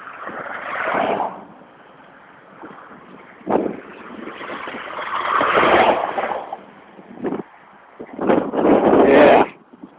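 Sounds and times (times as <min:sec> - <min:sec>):
truck passing on a road at a farm: 0:00.0 - 0:07.8
car passing on a road at a farm: 0:00.0 - 0:09.4.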